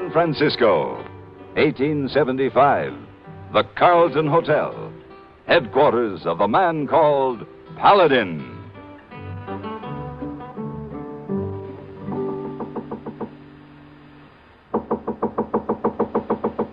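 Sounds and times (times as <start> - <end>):
speech: 0.1 - 4.9, 5.5 - 8.5
knocking on a hotel room door in San Francisco: 12.4 - 13.4, 14.7 - 16.7.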